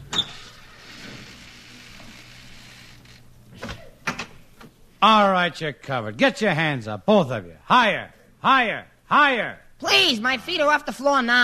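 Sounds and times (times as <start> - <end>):
front door creaking and grinding open: 0.0 - 4.4
speech: 5.0 - 11.4.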